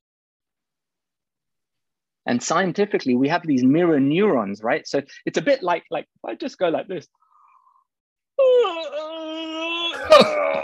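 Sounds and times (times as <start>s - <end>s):
speech: 2.3s - 7.2s
person yawning with a breathy sighing release: 8.4s - 10.6s.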